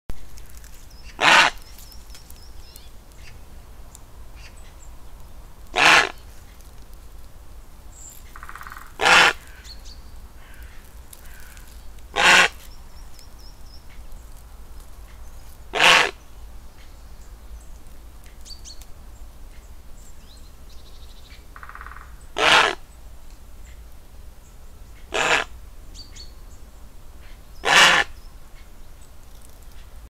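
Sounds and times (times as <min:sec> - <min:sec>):
grey heron call: 0:01.0 - 0:01.6, 0:05.7 - 0:06.2, 0:08.4 - 0:09.8, 0:10.4 - 0:12.7, 0:15.7 - 0:16.2, 0:21.6 - 0:22.8, 0:25.0 - 0:25.5, 0:27.2 - 0:28.2.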